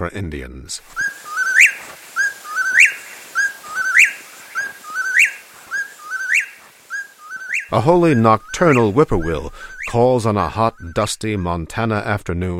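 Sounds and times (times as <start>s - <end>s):
speech: 0.0s - 1.2s, 7.7s - 12.5s
California quail calling: 0.9s - 11.7s.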